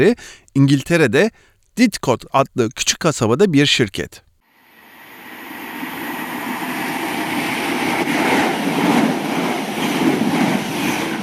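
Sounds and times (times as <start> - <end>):
speech: 0.0 - 4.3
train rumbling at a railway station: 5.1 - 11.2.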